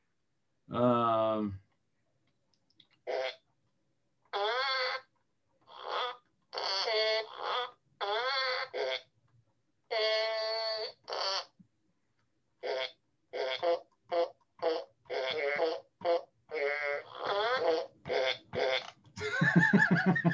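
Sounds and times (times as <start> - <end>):
speech: 0.7 - 1.6
fart piano playing a tune: 3.1 - 3.4, 5.7 - 9.1, 9.9 - 11.6, 12.6 - 19.0
laughter: 19.2 - 20.3.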